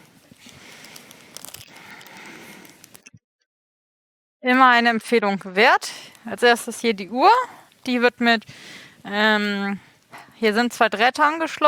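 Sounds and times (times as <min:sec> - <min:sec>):
plastic packaging crinkling as an experiment kit is unpacked: 0:00.2 - 0:03.0
speech: 0:04.4 - 0:11.6.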